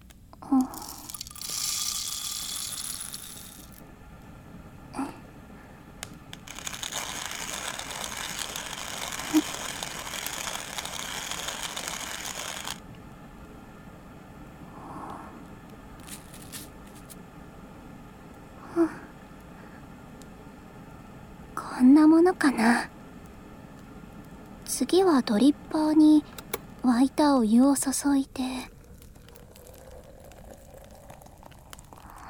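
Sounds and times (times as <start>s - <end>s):
coffee beans being ground: 0.6s - 3.8s, 6.3s - 12.8s, 16.0s - 17.2s, 28.7s - 32.2s
speech: 22.2s - 22.9s, 25.0s - 28.7s
faint clicks and knocks: 26.2s - 26.8s.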